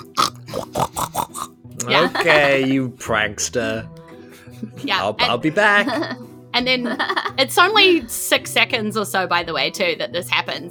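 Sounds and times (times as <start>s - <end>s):
person imitating pig oinking grunts: 0.0s - 2.7s
laughter: 1.8s - 2.9s, 4.3s - 7.4s
speech: 1.9s - 4.0s, 4.6s - 10.6s.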